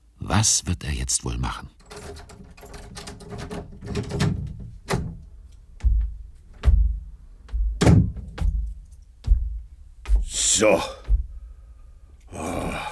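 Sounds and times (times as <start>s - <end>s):
speech: 0.3s - 2.4s, 3.3s - 4.5s, 10.6s - 11.0s
key rattling and clicking in the lock of a doctor's practice door: 1.8s - 5.7s
doctor's practice door thunking and knocking as it is worked open: 1.8s - 11.6s.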